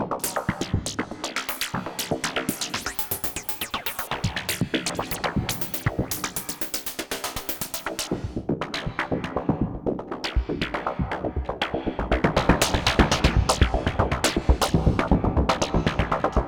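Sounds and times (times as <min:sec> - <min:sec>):
rhythmic pattern: 0:00.2 - 0:16.4.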